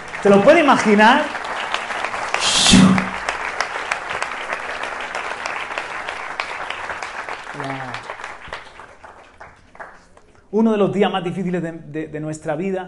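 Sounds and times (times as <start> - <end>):
room full of people applauding: 0.0 - 10.3
speech: 0.2 - 1.4, 10.6 - 12.8
voice calling out: 2.4 - 3.2.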